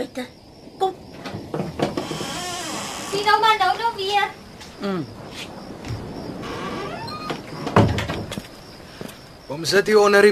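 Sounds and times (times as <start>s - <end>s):
speech: 0.0s - 1.0s, 3.2s - 5.6s, 9.5s - 10.3s
door pushed shut with a scraping slide: 1.2s - 3.4s, 5.9s - 8.5s.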